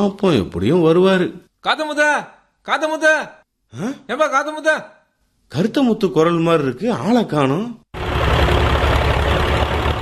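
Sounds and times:
speech: 0.0 - 8.0
tractor loaded with straw bales idling: 8.0 - 10.0.

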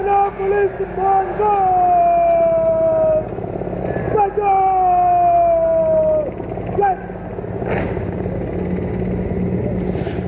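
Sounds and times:
Mi-17 helicopters passing overhead: 0.0 - 10.2
speech: 0.4 - 1.8.

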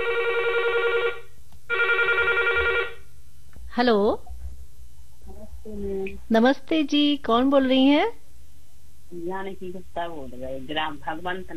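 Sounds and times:
telephone ringing for an incoming listener call to a radio phone-in: 0.0 - 3.1
speech: 3.8 - 4.3, 5.7 - 8.2, 9.1 - 11.5.

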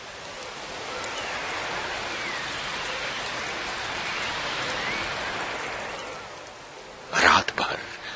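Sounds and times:
heavy rain pouring in a storm: 0.0 - 8.1.

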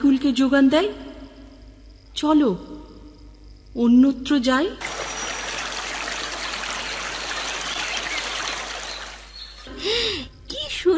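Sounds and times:
speech: 0.2 - 1.0, 2.2 - 2.8, 3.7 - 4.9
river babbling as it flows: 4.8 - 9.3.

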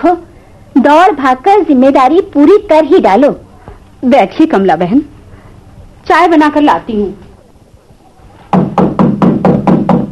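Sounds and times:
speech: 0.0 - 3.4, 4.0 - 5.1, 6.0 - 7.2
loud insistent heavy knocking on a door: 8.5 - 10.1.

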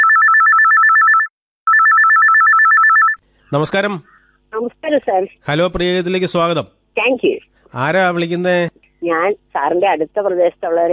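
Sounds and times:
telephone ringing for a caller on a radio phone-in: 0.0 - 3.2
speech: 3.5 - 10.9.

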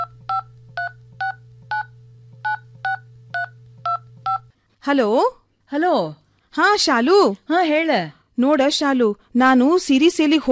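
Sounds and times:
telephone keypad two-tone beeps: 0.0 - 4.4
low steady hum: 0.0 - 8.4
speech: 4.8 - 10.5.

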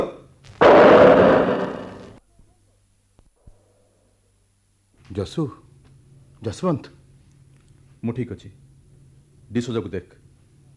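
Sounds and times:
revolver gunshot: 0.6 - 2.2
speech: 5.2 - 5.6, 6.4 - 7.0, 8.0 - 8.6, 9.5 - 10.2.

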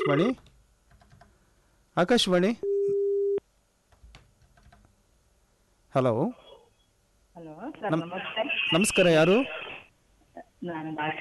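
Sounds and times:
telephone line tone after a disrupted call: 0.0 - 0.4, 2.6 - 3.4
speech: 0.0 - 0.5, 2.0 - 2.7, 6.0 - 6.4, 7.4 - 9.7, 10.6 - 11.2.

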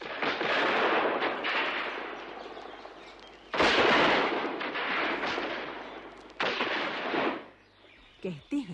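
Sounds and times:
heavy continuous gunfire exchanged from both sides: 0.0 - 2.2, 3.5 - 7.5
speech: 8.2 - 8.7.

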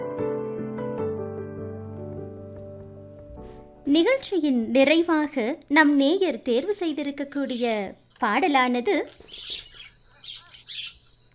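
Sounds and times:
speech: 3.9 - 10.4
myna bird giving harsh raspy squawking calls: 9.0 - 11.2.

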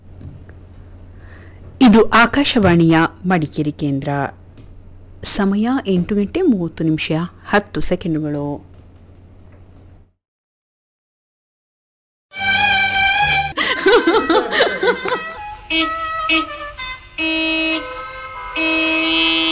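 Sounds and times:
speech: 1.9 - 4.4, 5.3 - 8.7
laughter: 13.5 - 15.4
garbage truck horn blasts: 15.6 - 19.5.

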